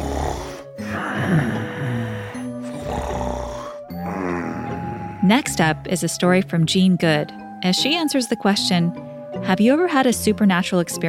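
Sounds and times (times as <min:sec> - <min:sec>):
loud snoring of a father: 0:00.0 - 0:05.6
speech: 0:05.3 - 0:11.0.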